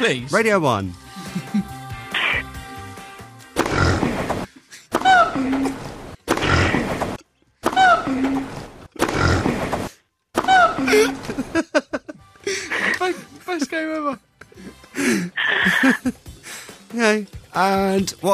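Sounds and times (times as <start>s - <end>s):
speech: 0.0s - 1.7s, 18.0s - 18.3s
laughter: 1.2s - 1.8s, 10.4s - 14.0s, 15.0s - 16.2s
pig grunts and squeals: 2.1s - 2.5s, 3.6s - 4.2s, 5.0s - 6.9s, 7.7s - 9.6s, 15.3s - 15.9s
gibbon rising hooting whoops: 15.4s - 16.0s.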